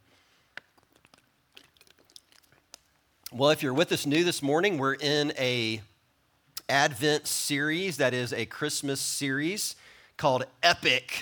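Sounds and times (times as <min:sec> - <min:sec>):
person sipping water with mouth clicks and soft slurps: 0:00.4 - 0:03.3
speech: 0:03.3 - 0:05.9, 0:06.7 - 0:11.2.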